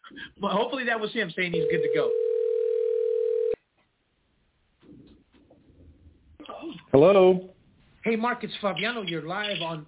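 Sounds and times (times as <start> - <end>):
speech: 0.2 - 2.3, 6.9 - 9.8
telephone dial tone while placing a call: 1.6 - 3.6.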